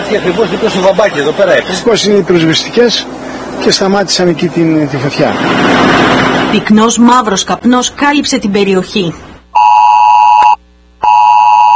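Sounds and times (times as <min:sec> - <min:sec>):
speech: 0:00.1 - 0:09.3
112 emergency alert tone during a fire: 0:09.5 - 0:11.7.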